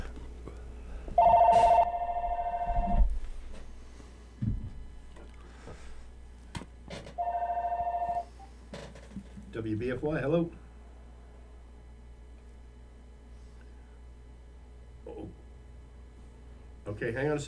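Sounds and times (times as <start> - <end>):
telephone ringing in loud electronic bursts: 1.2 - 3.0, 7.2 - 8.5
speech: 9.6 - 10.6, 17.0 - 17.4.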